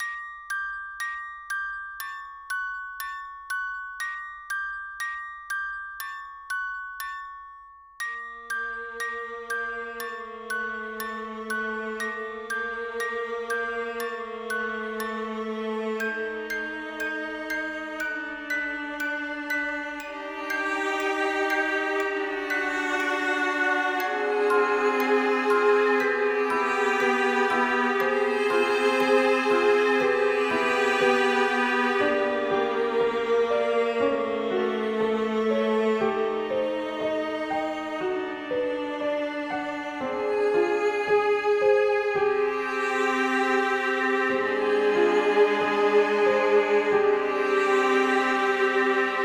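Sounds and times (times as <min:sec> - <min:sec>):
music box: 0:00.0 - 0:49.2
sad spooky violin: 0:08.8 - 0:49.2.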